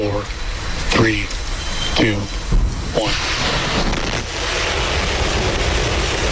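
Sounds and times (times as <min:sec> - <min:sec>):
speech: 0:00.1 - 0:00.4, 0:01.0 - 0:01.4
Starship rocket launch roar: 0:02.0 - 0:06.3.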